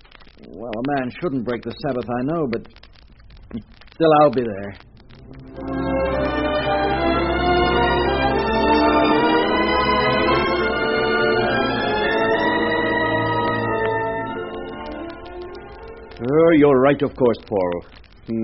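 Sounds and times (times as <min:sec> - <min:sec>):
speech: 0:00.6 - 0:02.8, 0:03.5 - 0:04.9, 0:16.2 - 0:18.4
church bells ringing in a full overlapping peal: 0:05.6 - 0:15.2.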